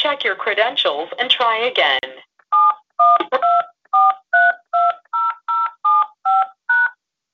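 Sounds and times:
speech: 0.0s - 3.2s
telephone keypad tones dialing a conference call access code: 2.6s - 6.9s.

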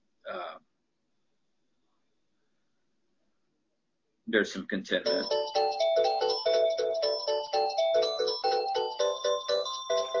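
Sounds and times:
speech: 4.3s - 5.8s
phone ringtone of an incoming call with a bright electronic melody: 5.0s - 10.1s.

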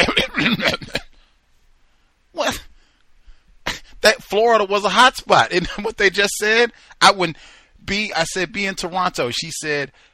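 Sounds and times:
woman coughing: 0.0s - 1.1s
speech: 4.0s - 10.1s.

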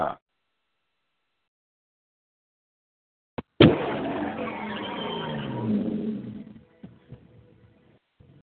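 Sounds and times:
speech: 0.0s - 0.2s
car skidding with tires squealing: 3.8s - 6.6s.

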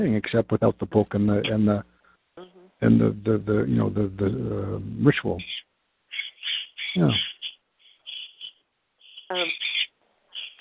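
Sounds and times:
speech: 0.0s - 5.6s, 6.9s - 7.3s
pet birds chirping: 5.2s - 10.5s.

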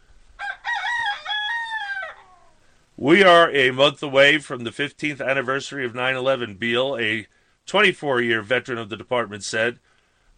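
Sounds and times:
rooster crowing: 0.4s - 2.7s
speech: 3.0s - 10.3s.

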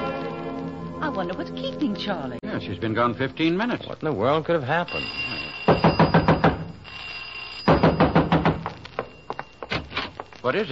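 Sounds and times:
speech: 1.1s - 5.4s, 10.4s - 10.7s
pounding on a garage door: 5.7s - 6.7s, 7.7s - 8.7s.

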